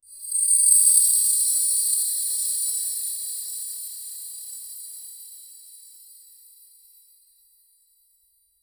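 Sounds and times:
soft airy bell chime: 0:00.1 - 0:06.4.

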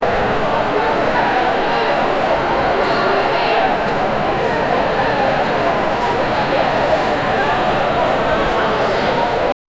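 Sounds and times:
coliseum arena crowd: 0:00.0 - 0:09.6.

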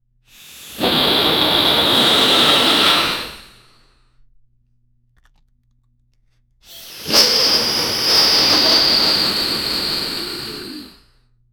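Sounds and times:
cartoon character inflating like a balloon: 0:00.3 - 0:03.8, 0:06.6 - 0:11.1.

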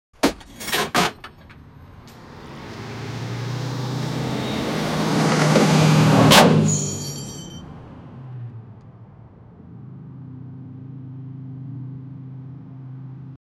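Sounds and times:
car crashing: 0:00.2 - 0:09.3.

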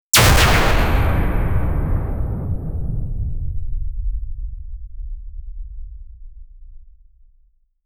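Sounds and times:
short blue laser blast weapon fire: 0:00.1 - 0:03.9.

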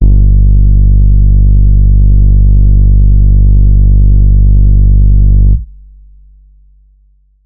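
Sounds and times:
808 bass: 0:00.0 - 0:05.8.

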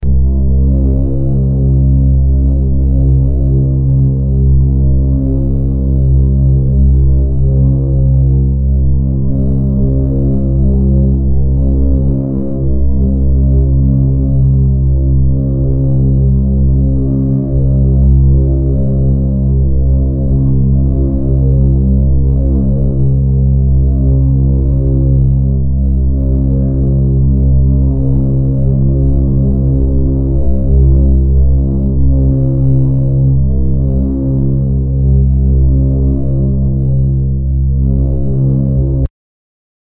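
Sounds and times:
eerie low key dark tone: 0:00.0 - 0:39.1.

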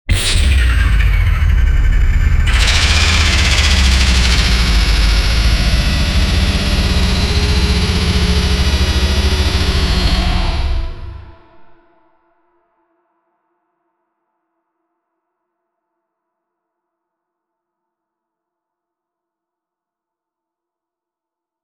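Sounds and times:
evil sci-fi robot powering on: 0:00.1 - 0:11.8.

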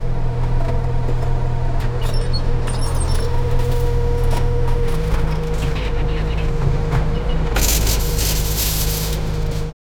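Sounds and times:
bus engine hum: 0:00.1 - 0:09.7.

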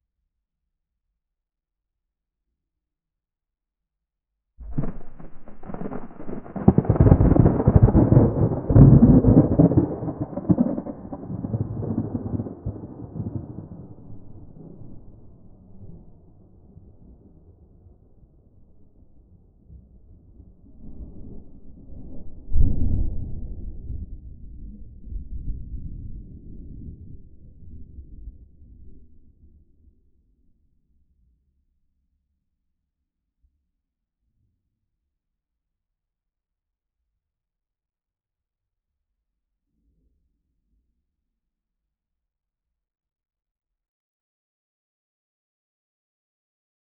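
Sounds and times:
thunder in an open field: 0:04.6 - 0:16.0.

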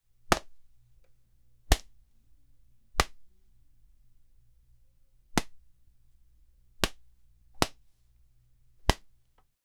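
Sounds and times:
cloth being hit: 0:00.3 - 0:00.7, 0:01.7 - 0:02.0, 0:03.0 - 0:03.3, 0:05.4 - 0:05.6, 0:06.8 - 0:07.9, 0:08.8 - 0:09.1.

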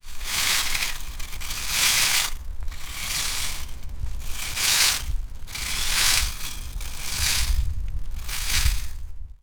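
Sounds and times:
soil dragging in agriculture: 0:00.0 - 0:09.0.

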